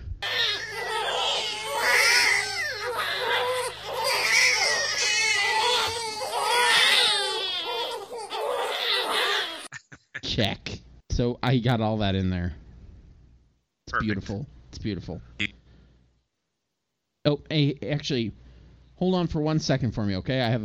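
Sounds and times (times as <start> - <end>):
young child wailing and sobbing: 0.2 - 9.7
speech: 10.4 - 10.6, 11.2 - 12.6, 13.9 - 15.4, 17.2 - 18.4, 19.0 - 20.6.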